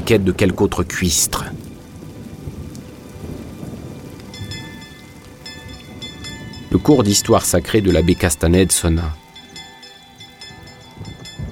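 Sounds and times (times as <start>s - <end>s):
low rumbling thunder: 0.0s - 9.3s
heavy rain: 0.0s - 11.5s
speech: 0.1s - 1.6s, 6.8s - 9.2s.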